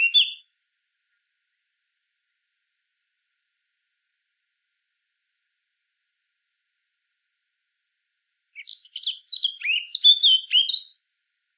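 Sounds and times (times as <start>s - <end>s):
Eurasian blackcap Sylvia atricapilla singing: 0.0s - 0.4s, 8.6s - 11.0s.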